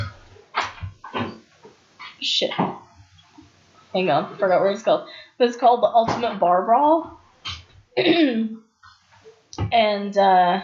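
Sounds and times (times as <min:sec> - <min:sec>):
speech: 0:02.2 - 0:02.8, 0:03.9 - 0:07.2, 0:08.0 - 0:08.6, 0:09.7 - 0:10.6
person coughing: 0:08.0 - 0:08.4.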